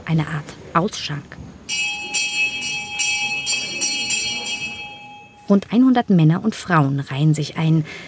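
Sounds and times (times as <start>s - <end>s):
speech: 0.1s - 1.9s, 5.5s - 8.0s
bell ringing in a church hall: 1.7s - 5.6s.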